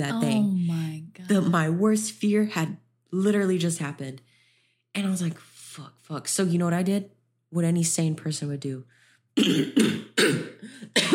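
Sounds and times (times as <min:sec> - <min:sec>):
speech: 0:00.0 - 0:00.5, 0:01.3 - 0:04.3, 0:05.0 - 0:11.1
person forcing out throaty staged coughs: 0:09.4 - 0:11.1.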